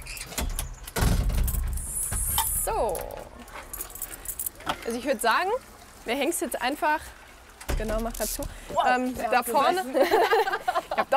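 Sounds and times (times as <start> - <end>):
door rattling at a secured otter enclosure in a zoo: 0.0 - 1.8
speech: 4.9 - 7.2, 7.8 - 11.1
laughter: 9.7 - 11.1.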